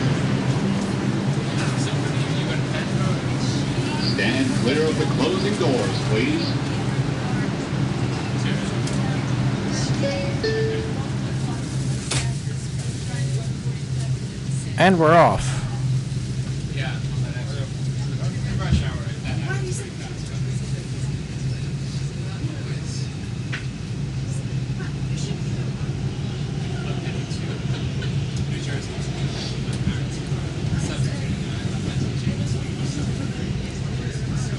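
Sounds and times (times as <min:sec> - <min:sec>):
express subway train rumbling at speed: 0:00.0 - 0:34.5
faint indistinct voices: 0:00.0 - 0:34.5
speech: 0:04.2 - 0:06.7, 0:14.8 - 0:15.6.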